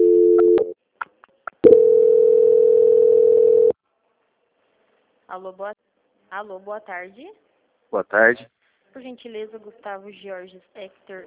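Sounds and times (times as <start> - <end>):
telephone line tone as a call is transferred: 0.0 - 0.7, 1.6 - 3.8
speech: 5.4 - 5.7, 6.3 - 11.2.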